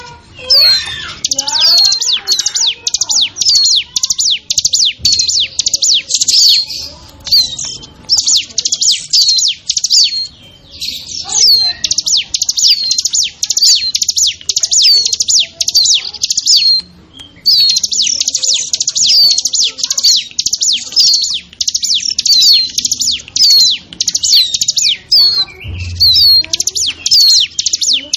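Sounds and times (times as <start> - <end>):
bar-winged prinia lure recording of sharp descending chirps: 0.0 - 28.1.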